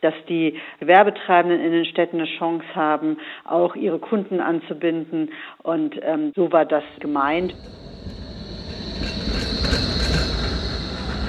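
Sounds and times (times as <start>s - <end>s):
speech: 0.0s - 8.1s
tram rolling past at Hackescher Markt, wheels on rails: 6.9s - 11.2s.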